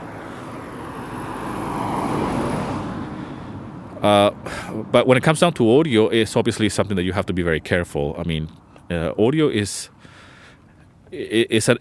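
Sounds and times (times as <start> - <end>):
car passing by outside: 0.0 - 4.9
speech: 4.0 - 10.0, 11.1 - 11.7.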